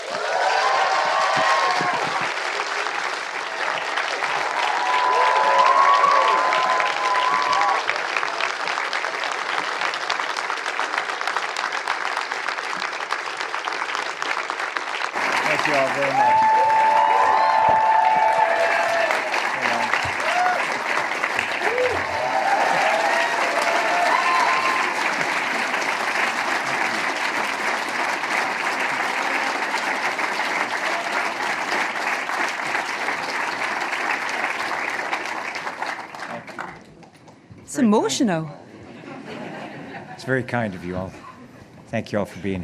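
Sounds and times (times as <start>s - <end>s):
large audience applause: 0.0s - 38.0s
cheers and whistles: 4.5s - 8.0s, 15.9s - 20.7s, 21.6s - 25.1s
speech: 37.9s - 38.6s, 40.2s - 41.2s, 41.9s - 42.6s
laughter: 38.7s - 41.7s.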